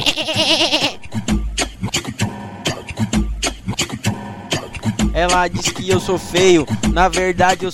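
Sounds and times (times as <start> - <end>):
speech: 0.0 - 0.9, 5.2 - 7.7
goat bleating: 0.0 - 1.1
punchy rhythmic music beat with deep bass thumps: 1.0 - 7.7.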